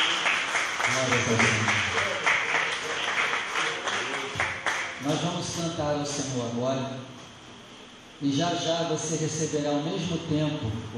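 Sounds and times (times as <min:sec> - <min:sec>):
church audience applauding during a communion service: 0:00.0 - 0:05.1
speech: 0:00.9 - 0:01.9, 0:05.1 - 0:07.2, 0:08.2 - 0:10.9.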